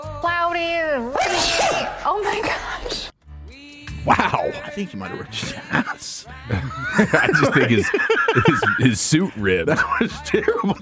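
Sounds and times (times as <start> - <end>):
speech: 0.9 - 3.1, 4.0 - 10.8
loud sneeze: 1.2 - 2.1
laughter: 6.4 - 10.8.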